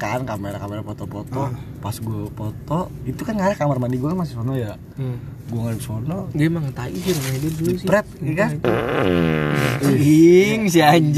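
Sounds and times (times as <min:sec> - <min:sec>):
speech: 0:00.0 - 0:11.1
drawn-out buzzy fart: 0:08.6 - 0:10.1.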